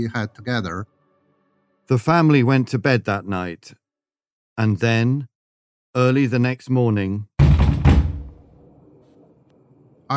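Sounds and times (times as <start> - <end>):
speech: 0.0 - 1.0, 1.9 - 3.8, 4.6 - 5.3, 6.0 - 7.3
heavy booming knocks on a door: 7.4 - 8.4.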